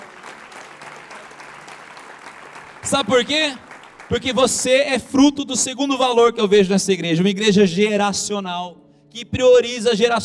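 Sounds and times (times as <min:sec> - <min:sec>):
congregation clapping in a dense steady wash of applause: 0:00.0 - 0:05.7
speech: 0:02.8 - 0:10.2.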